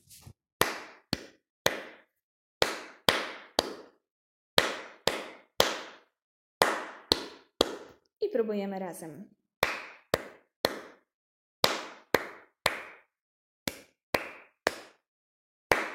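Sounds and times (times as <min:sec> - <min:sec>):
hands clapping a rhythm for a rhythmic echo exercise: 0:00.6 - 0:04.0, 0:04.6 - 0:08.0, 0:09.6 - 0:13.1, 0:13.7 - 0:15.1, 0:15.7 - 0:15.9
speech: 0:08.3 - 0:09.4.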